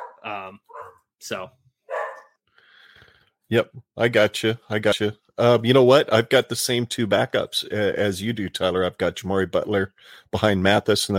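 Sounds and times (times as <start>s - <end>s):
dog barking sharply: 0.0s - 1.1s, 1.9s - 2.4s
speech: 0.2s - 1.6s, 3.5s - 11.1s.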